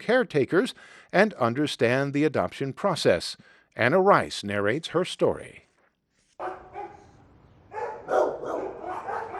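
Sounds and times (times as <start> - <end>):
speech: 0.0 - 5.6
several dogs barking and yipping in an animal shelter: 6.4 - 9.3.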